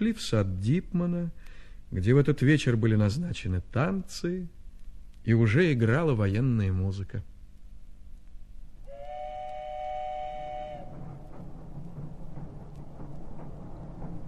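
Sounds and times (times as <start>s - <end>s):
speech: 0.0s - 4.6s, 5.2s - 7.3s
passenger train whistle: 8.8s - 11.4s
passenger train rumbling along: 8.9s - 14.2s.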